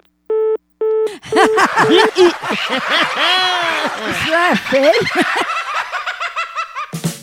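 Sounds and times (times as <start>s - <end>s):
telephone busy tone: 0.3s - 2.1s
phone call hung up clicks: 0.9s - 2.1s
several people laughing loudly: 1.1s - 6.9s
speech: 1.2s - 5.5s.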